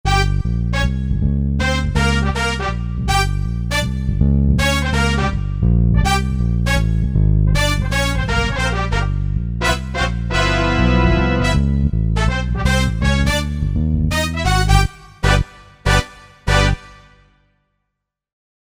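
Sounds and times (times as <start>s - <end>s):
Korg MSC-9S organ bass brass tone: 0.0s - 17.4s.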